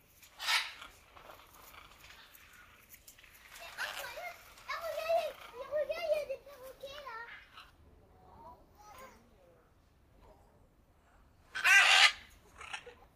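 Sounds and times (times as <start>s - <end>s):
macaw soft tonal chattering and warbling: 0.1s - 7.8s, 11.4s - 13.1s
macaw harsh screech: 0.3s - 1.4s, 11.6s - 13.0s.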